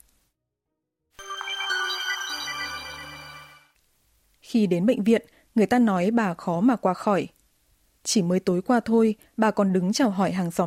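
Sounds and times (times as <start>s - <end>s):
phone message notification tone: 1.2s - 3.8s
speech: 4.5s - 7.4s, 8.0s - 10.6s.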